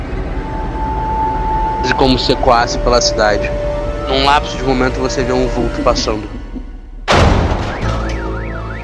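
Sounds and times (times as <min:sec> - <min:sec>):
car alarm wailing: 0:00.3 - 0:05.9, 0:07.6 - 0:08.8
speech: 0:02.0 - 0:06.4
heavy crashing thud: 0:07.1 - 0:08.3.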